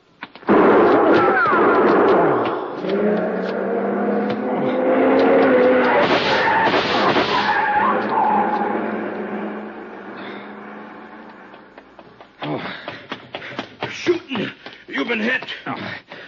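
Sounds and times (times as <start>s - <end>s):
coupe tires squealing: 0.5s - 12.0s
people talking: 1.0s - 1.8s, 13.8s - 16.0s
long black coupe speeding away: 2.9s - 6.6s, 7.6s - 11.9s.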